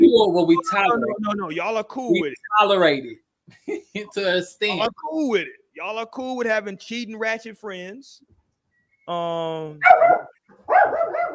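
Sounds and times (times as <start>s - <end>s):
speech: 0.1s - 8.4s, 9.1s - 11.3s
dogs barking excitedly: 9.8s - 11.3s.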